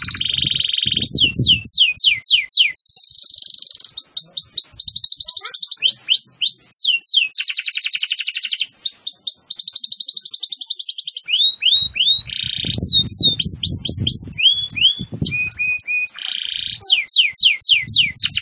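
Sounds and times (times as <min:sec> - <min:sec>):
canary singing vigorously: 0:00.0 - 0:18.4.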